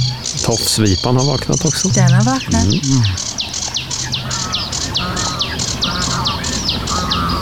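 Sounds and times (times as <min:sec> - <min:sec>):
outdoor hum: 0:00.0 - 0:03.4
sedge warbler singing: 0:00.0 - 0:07.3
speech: 0:00.5 - 0:03.3.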